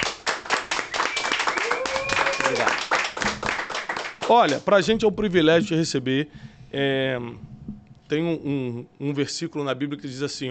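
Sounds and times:
crowd applauding: 0.0s - 4.7s
people cheering: 0.5s - 4.0s
whistle: 0.7s - 2.8s
speech: 4.3s - 7.5s, 8.1s - 10.4s.

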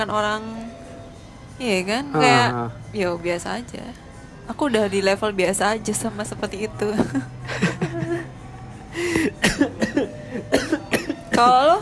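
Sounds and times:
speech: 0.0s - 0.8s, 1.6s - 7.8s, 11.4s - 11.8s
laughter: 7.0s - 8.3s
harsh raspy coughing: 9.1s - 11.8s.

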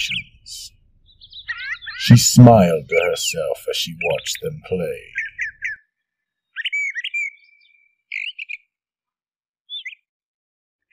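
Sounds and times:
bird singing in a yard: 0.0s - 8.8s, 9.7s - 10.1s
speech: 2.1s - 5.2s.

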